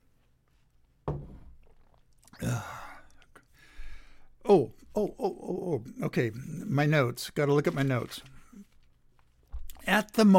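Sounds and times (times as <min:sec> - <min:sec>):
soft thunk: 0:01.1 - 0:01.5
person sipping and swallowing a drink: 0:01.6 - 0:03.5
breathy exhale: 0:03.6 - 0:04.3
speech: 0:04.5 - 0:08.3, 0:09.8 - 0:10.3.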